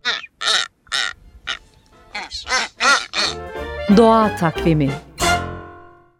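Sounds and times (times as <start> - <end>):
blue-footed booby honking calls: 0.0 - 3.9
speech: 3.9 - 5.1.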